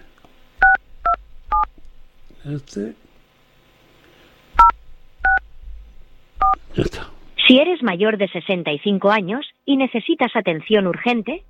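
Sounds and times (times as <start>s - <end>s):
faint low hum: 0.0s - 11.4s
speech: 2.4s - 3.1s, 7.5s - 11.4s
telephone keypad dialing tones on a call to an automated service line: 4.6s - 5.4s.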